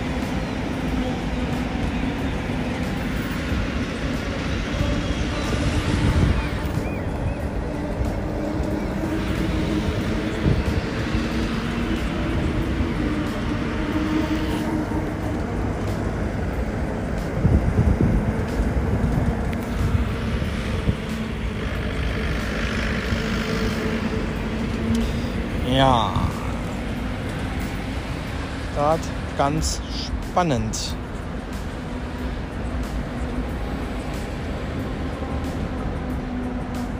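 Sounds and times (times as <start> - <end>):
vehicles driving off and onto a ferry at Puttgarden: 0.0 - 36.9
speech: 29.4 - 31.0.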